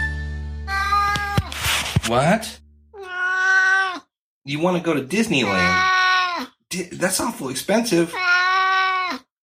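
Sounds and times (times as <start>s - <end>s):
long drawn-out cat meow: 0.7s - 1.6s, 3.0s - 4.1s, 5.4s - 6.6s, 8.1s - 9.3s
speech: 2.1s - 2.6s, 4.4s - 8.4s.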